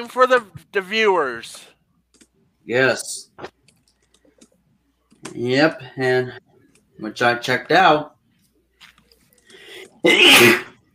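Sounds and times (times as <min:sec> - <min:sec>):
speech: 0:00.0 - 0:01.7, 0:02.7 - 0:03.6, 0:05.2 - 0:08.1, 0:10.0 - 0:10.7
loud sneeze: 0:10.1 - 0:10.8.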